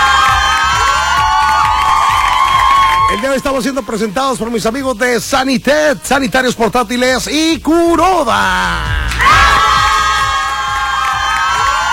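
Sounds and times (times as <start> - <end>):
shrill high shouts from a crowd: 0.0 - 3.9, 8.6 - 11.9
crowd cheering and whooping at an event honoring schoolteachers: 0.0 - 4.4, 8.7 - 11.9
speech: 3.3 - 9.6.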